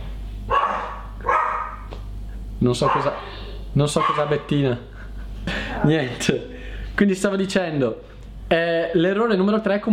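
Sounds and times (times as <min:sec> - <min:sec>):
low steady hum: 0:00.0 - 0:09.9
dog barking: 0:00.5 - 0:01.9, 0:02.8 - 0:03.4, 0:04.0 - 0:04.5
speech: 0:02.6 - 0:04.9, 0:05.5 - 0:09.9.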